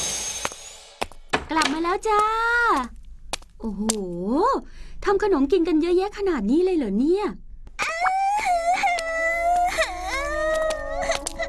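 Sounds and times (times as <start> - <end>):
speech: 1.5 - 3.0, 3.6 - 7.4
child crying: 7.8 - 11.4.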